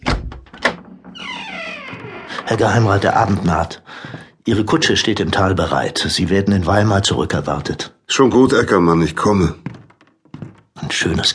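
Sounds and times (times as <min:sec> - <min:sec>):
wooden hut door creaking open: 0:00.0 - 0:03.7
speech: 0:02.5 - 0:09.8, 0:11.0 - 0:11.3.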